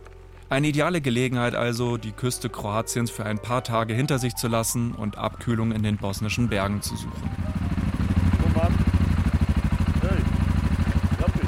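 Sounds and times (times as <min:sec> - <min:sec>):
speech: 0:00.5 - 0:07.6
two yellow four-stroke quad engines idling at the roadside in the Bosnian mountains: 0:05.2 - 0:11.4.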